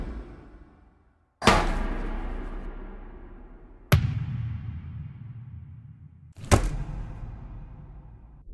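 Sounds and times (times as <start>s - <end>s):
hard hit: 1.4s - 8.2s.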